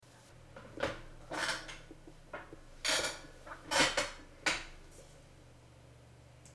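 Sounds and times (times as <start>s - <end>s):
creaky chair: 0.5s - 5.2s.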